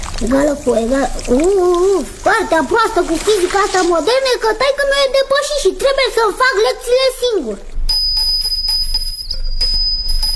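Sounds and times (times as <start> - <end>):
speech: 0.2 - 7.7
shrill bell ringing: 7.9 - 10.3.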